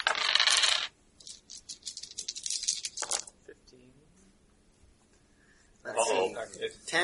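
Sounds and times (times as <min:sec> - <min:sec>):
dice rattling and clattering across a hard tabletop during a tabletop game: 0:00.0 - 0:03.4
speech: 0:06.5 - 0:07.0.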